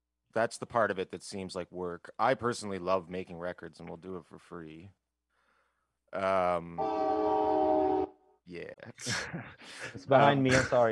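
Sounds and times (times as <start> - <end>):
speech: 0.4 - 5.0, 6.1 - 7.3, 8.5 - 10.9
loud train horn blasts: 6.8 - 8.2.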